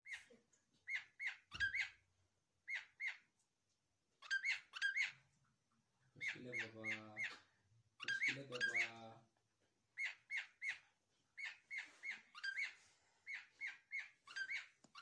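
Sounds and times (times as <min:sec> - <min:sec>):
cockatiel calling: 0:00.0 - 0:02.0, 0:02.6 - 0:03.3, 0:04.2 - 0:05.2, 0:06.2 - 0:07.4, 0:08.0 - 0:09.0, 0:10.0 - 0:15.0.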